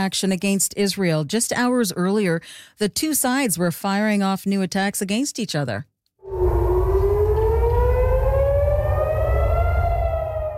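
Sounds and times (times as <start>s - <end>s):
speech: 0.0s - 6.4s
civil defense air raid siren wailing across Jerusalem: 6.2s - 10.5s
low rumbling hum: 6.3s - 10.5s.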